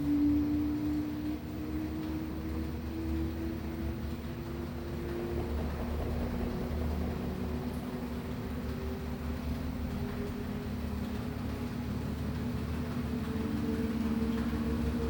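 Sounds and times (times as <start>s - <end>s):
washing machine spinning: 0.0s - 15.0s.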